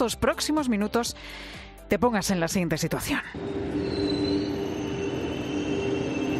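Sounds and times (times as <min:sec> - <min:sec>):
speech: 0:00.0 - 0:04.0
train rumbling at a railway station: 0:03.3 - 0:06.3
dense mechanical hum: 0:03.4 - 0:06.3
thin high metallic squeal of train wheels: 0:03.4 - 0:06.3.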